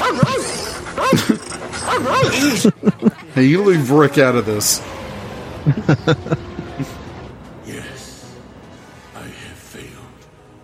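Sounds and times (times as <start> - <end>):
dog whimpering and yipping: 0.0 - 2.6
laughter: 0.0 - 4.1, 5.6 - 7.2
speech: 1.3 - 5.0, 5.6 - 7.0.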